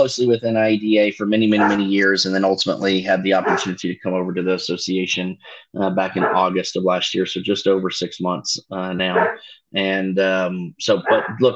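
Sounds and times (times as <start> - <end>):
speech: 0.0 - 11.5
dog barking and yipping: 1.5 - 2.0, 3.4 - 3.8, 6.2 - 6.6, 9.1 - 9.5, 11.0 - 11.4.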